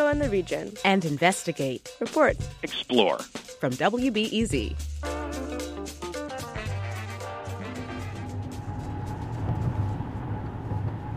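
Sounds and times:
music: 0.0s - 10.2s
speech: 0.1s - 5.2s
road noise: 7.8s - 11.1s
car engine drone in backed-up traffic: 8.2s - 11.1s.

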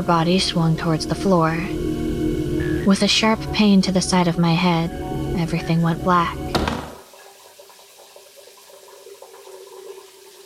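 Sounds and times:
speech: 0.0s - 2.0s, 2.8s - 6.4s
shower water running: 2.7s - 10.4s.

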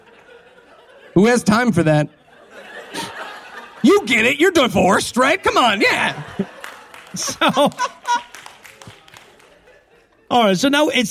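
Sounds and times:
laughter: 0.0s - 11.0s
speech: 1.2s - 2.2s, 3.8s - 6.5s, 7.1s - 7.9s, 10.3s - 11.0s
scattered audience clapping: 6.0s - 10.0s.

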